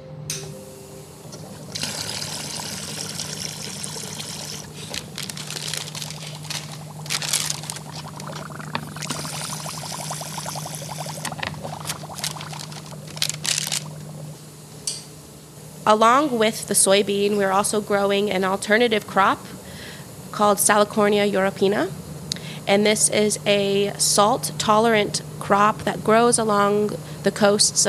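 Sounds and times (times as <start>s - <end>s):
low steady hum: 0.0s - 27.8s
water gushing from a hose watering plants: 1.4s - 14.4s
speech: 15.9s - 19.6s, 20.4s - 22.0s, 22.7s - 27.8s.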